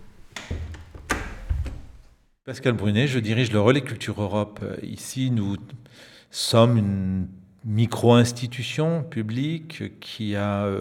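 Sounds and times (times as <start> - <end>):
door being pushed shut: 0.0 - 2.2
speech: 2.5 - 10.7.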